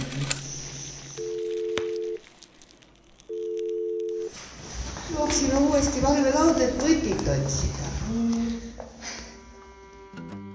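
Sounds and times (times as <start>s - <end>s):
long steady telephone line tones: 1.1s - 2.2s, 3.3s - 4.3s
speech: 5.3s - 8.3s.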